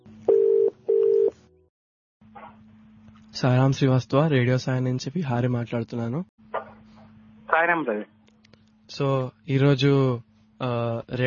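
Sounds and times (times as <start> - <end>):
ringback tone of an outgoing telephone call: 0.3 - 1.3
speech: 3.4 - 6.4, 7.6 - 8.2, 8.9 - 11.2.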